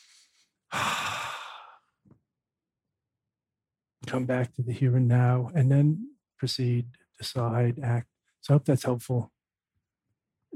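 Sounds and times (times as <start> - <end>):
deliberate deep breath: 0.0 - 2.0
speech: 4.1 - 9.4.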